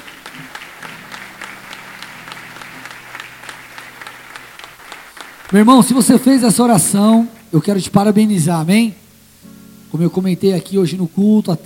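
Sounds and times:
audience applauding: 0.0s - 6.8s
speech: 5.5s - 9.0s, 9.9s - 11.6s.

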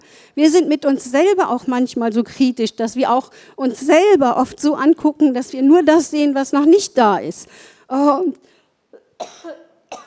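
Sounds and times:
speech: 0.4s - 8.5s
person coughing harshly: 9.0s - 10.0s.

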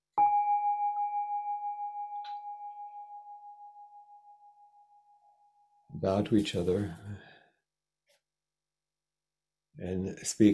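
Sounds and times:
meditation bell struck and ringing: 0.2s - 6.0s
speech: 6.0s - 7.3s, 9.8s - 10.5s.

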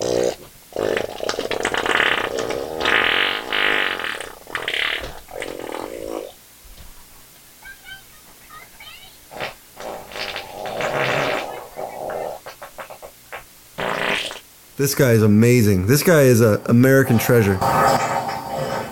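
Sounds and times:
loud long rumbling farts with squeaky bursts: 0.0s - 6.4s, 9.3s - 14.5s
speech: 14.8s - 18.0s.

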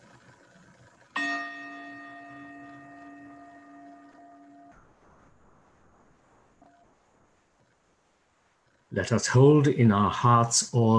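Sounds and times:
meditation chime ringing: 1.2s - 4.9s
speech: 9.0s - 10.9s.

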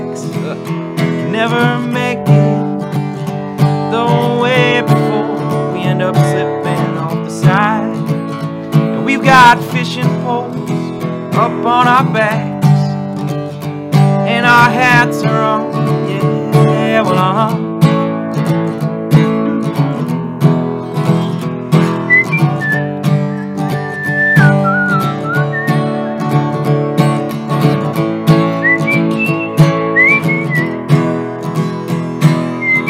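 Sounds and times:
steady strummed instrumental backing: 0.0s - 32.8s
speech: 0.2s - 2.6s, 11.4s - 12.5s, 14.5s - 16.4s
person whistling a cowboy-style tune: 22.0s - 26.4s, 28.6s - 30.8s, 32.6s - 32.8s.

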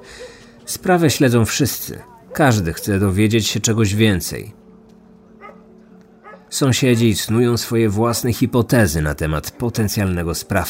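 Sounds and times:
tracking dogs barking in short yips: 0.0s - 0.7s, 2.0s - 3.3s, 5.4s - 6.5s
speech: 0.7s - 4.6s, 6.5s - 10.6s.

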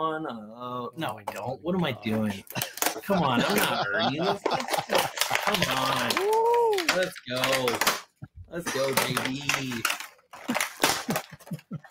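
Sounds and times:
speech: 0.0s - 10.0s
laughter: 1.9s - 7.6s, 10.4s - 11.8s
packaging of a mailed package ripping and crinkling: 4.3s - 8.1s, 8.7s - 11.6s.

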